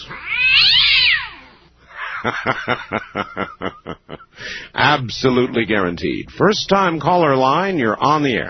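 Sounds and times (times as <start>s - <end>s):
cat yowling in pain: 0.0s - 1.6s
laughter: 2.0s - 4.3s
speech: 2.2s - 8.4s.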